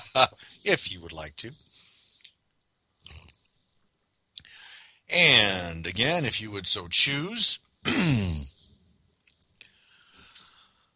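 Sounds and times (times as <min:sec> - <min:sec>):
soft breathy hiss: 0:00.0 - 0:02.4, 0:04.4 - 0:05.2, 0:09.6 - 0:10.9
speech: 0:00.2 - 0:01.9, 0:05.1 - 0:08.4.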